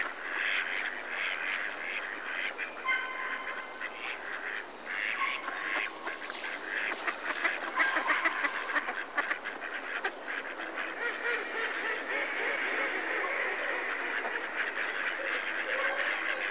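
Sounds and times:
mallards quacking: 0:00.1 - 0:16.4.

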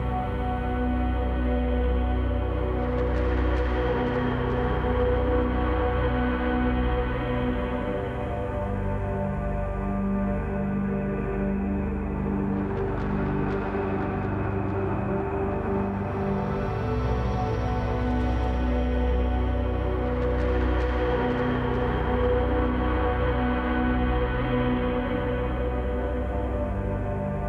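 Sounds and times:
airy breathy solemn musical drone: 0:00.0 - 0:27.4.

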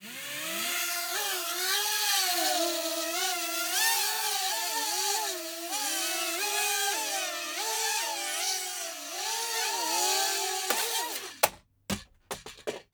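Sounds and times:
quadcopter taking off and flying around indoors: 0:00.0 - 0:11.4
quadcopter crashing indoors: 0:09.6 - 0:11.6.

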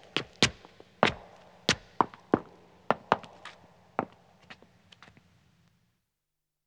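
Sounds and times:
footsteps ascending echoing stone stairs: 0:00.1 - 0:05.2.

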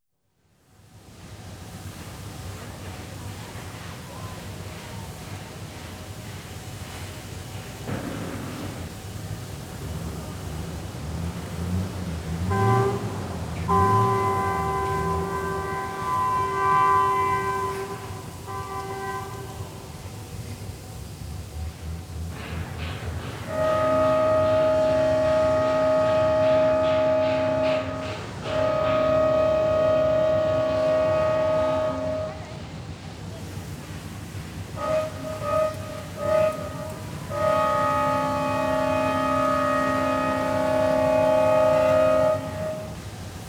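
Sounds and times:
steelworks noise in Anshan China: 0:07.8 - 0:20.7, 0:22.3 - 0:32.8, 0:33.4 - 0:43.4.

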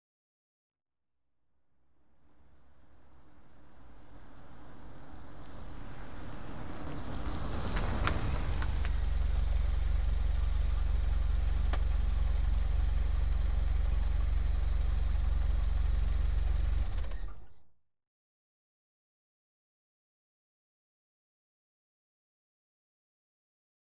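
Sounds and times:
Vauxhall Carlton saloon car exterior: 0:01.8 - 0:17.8.

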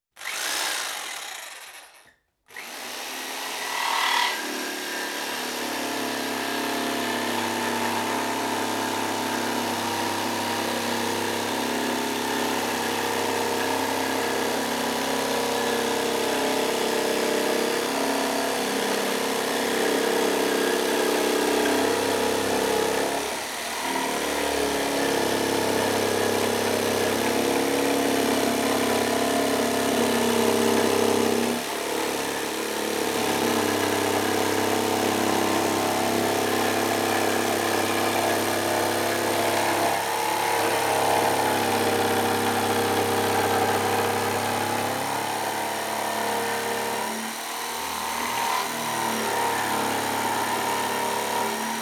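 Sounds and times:
electric jigsaw cutting a plywood sheet in construction: 0:00.1 - 0:51.8.

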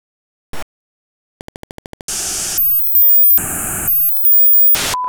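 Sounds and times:
digital glitch loop: 0:02.1 - 0:05.0.

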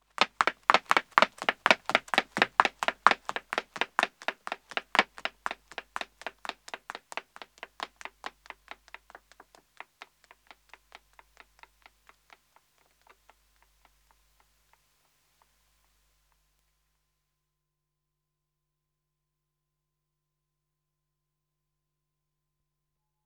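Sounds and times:
woman running away on pavement: 0:00.0 - 0:14.2.

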